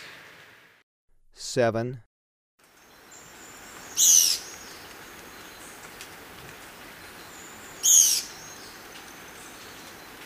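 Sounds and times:
speech: 1.5 - 2.1
Esmeraldas antbird calling in Ecuador: 3.3 - 4.8, 7.8 - 8.6.

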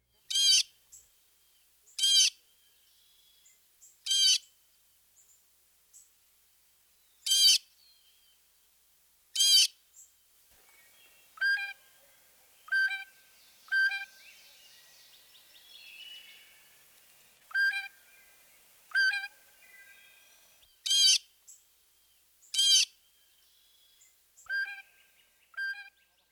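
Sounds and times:
blue jay calling: 0.3 - 0.7, 1.9 - 2.5, 4.0 - 4.5, 7.2 - 7.8, 9.3 - 9.8, 10.9 - 16.8, 17.5 - 21.6, 22.5 - 23.0.

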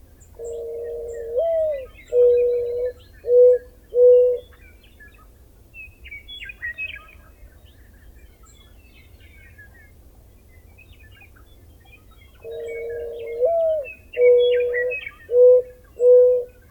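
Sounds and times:
faint birdsong: 0.0 - 16.6
mourning dove cooing: 0.4 - 4.5, 12.4 - 16.6.

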